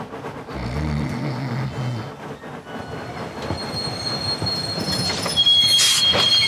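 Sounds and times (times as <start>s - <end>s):
train rolling along the rails with a low rumble: 0.0s - 6.4s
high metallic train wheel squeals: 2.8s - 6.4s.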